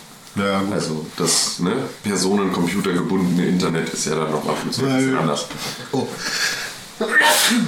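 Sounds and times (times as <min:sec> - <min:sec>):
speech: 0:00.4 - 0:07.6
person sneezing: 0:07.0 - 0:07.6.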